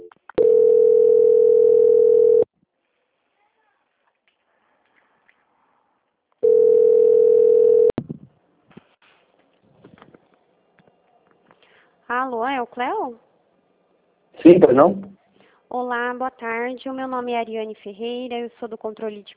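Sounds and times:
telephone line tones during a call transfer: 0.0 - 2.5, 6.4 - 7.9
speech: 12.6 - 13.3, 14.5 - 15.1, 15.7 - 19.3.

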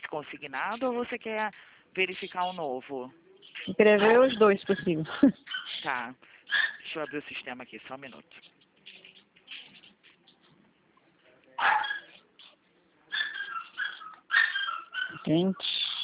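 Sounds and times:
speech: 0.1 - 8.5, 15.3 - 15.8
small dog barking through a telephone line: 4.0 - 4.7, 6.5 - 7.2, 11.6 - 12.5, 13.1 - 16.0.

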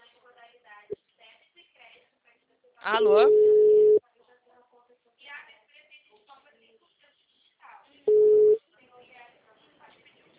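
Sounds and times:
speech: 2.8 - 3.5
telephone busy tone beeps after a dropped call: 3.3 - 4.0, 8.1 - 8.6.

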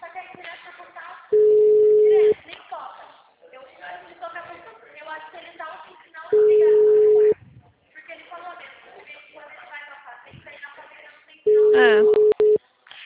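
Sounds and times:
voices talking quietly: 0.0 - 13.0
telephone busy tone from an unanswered call: 1.4 - 2.4, 6.4 - 7.4, 11.5 - 12.6.

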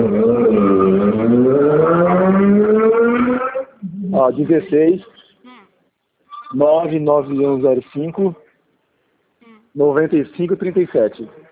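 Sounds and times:
motorcycle engine roaring past outside: 0.0 - 3.8
speech: 4.2 - 5.2, 6.5 - 8.4, 9.8 - 11.4.

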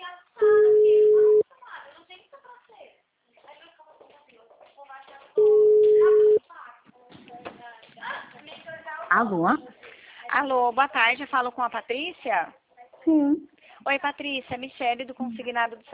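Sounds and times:
telephone ringing tone while a call to a client is placed: 0.4 - 1.4, 5.4 - 6.4
speech: 9.2 - 9.7, 10.4 - 15.9.

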